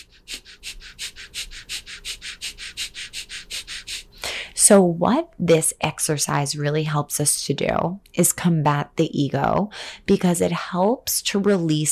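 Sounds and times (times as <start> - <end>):
breath of fire, rapid forceful breathing in and out through the nose: 0.0 - 4.6
speech: 4.7 - 11.9.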